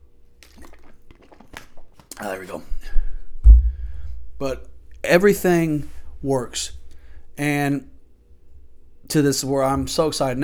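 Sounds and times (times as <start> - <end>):
person sipping and swallowing water: 0.4 - 4.4
speech: 2.2 - 2.9, 4.4 - 6.8, 7.4 - 7.9, 9.1 - 10.4.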